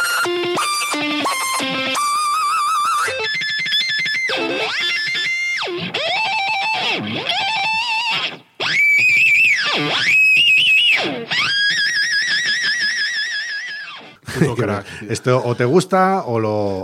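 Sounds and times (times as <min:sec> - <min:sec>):
heavily effected electric guitar whammy pedal pitch sweeps: 0:00.0 - 0:14.2
laughter: 0:14.2 - 0:15.8
speech: 0:14.5 - 0:16.8.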